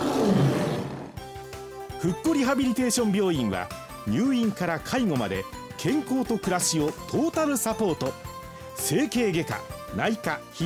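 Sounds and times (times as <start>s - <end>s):
tiger roar: 0.0s - 1.2s
speech: 2.0s - 10.6s.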